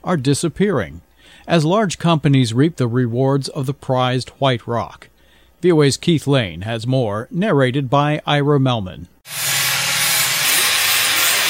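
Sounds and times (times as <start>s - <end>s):
speech: 0.0s - 9.4s
marble cutting and grinding machines: 9.3s - 11.4s.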